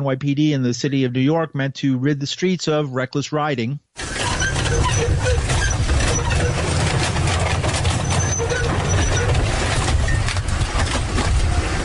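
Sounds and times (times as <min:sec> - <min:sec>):
speech: 0:00.0 - 0:04.1
grinding of dirt bikes crushed under earth mover treads: 0:04.0 - 0:11.2
gigantic tracked earth mover engine roaring while crushing dirt bikes: 0:04.0 - 0:11.8.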